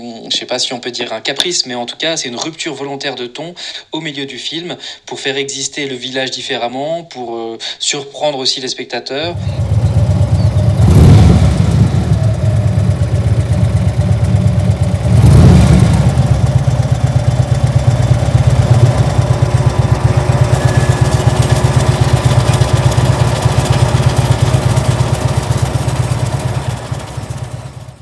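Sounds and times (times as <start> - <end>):
speech: 0.0 - 9.9
motorcycle engines revving and rumbling: 9.3 - 27.9.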